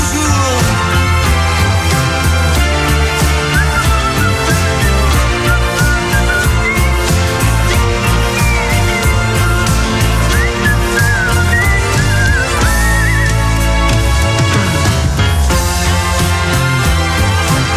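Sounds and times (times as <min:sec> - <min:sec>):
full loud band track: 0:00.0 - 0:17.7
whistled melody in a song: 0:02.6 - 0:14.4.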